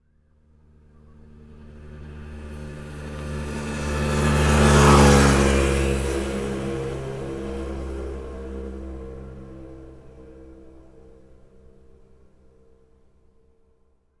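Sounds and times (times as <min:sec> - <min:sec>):
motorcycle scooter passing by on road: 0:00.8 - 0:11.8.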